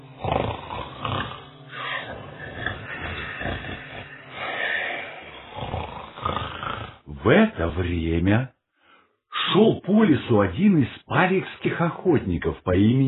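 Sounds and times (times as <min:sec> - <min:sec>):
loud rumbling snores of several sleepers in a forest house: 0:00.0 - 0:07.1
speech: 0:07.3 - 0:08.6, 0:09.5 - 0:13.0.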